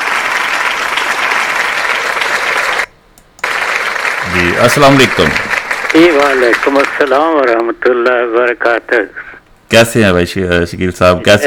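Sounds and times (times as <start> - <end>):
crowd applause welcoming a guest: 0.0 - 7.5
speech: 4.6 - 11.4.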